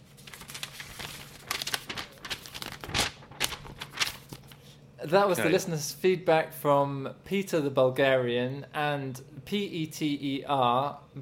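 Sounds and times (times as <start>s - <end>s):
envelope paper tearing and crinkling as an envelope is opened: 0.0s - 4.6s
speech: 5.0s - 11.1s.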